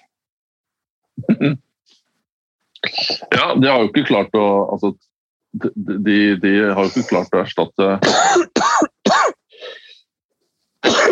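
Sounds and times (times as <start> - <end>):
person coughing: 1.2 - 1.6, 2.8 - 3.6, 8.0 - 9.4, 10.8 - 11.1
person clearing throat with a soft rasp: 1.2 - 1.7, 2.8 - 3.6, 8.0 - 9.4, 10.8 - 11.1
speech: 1.4 - 2.0, 2.9 - 8.9.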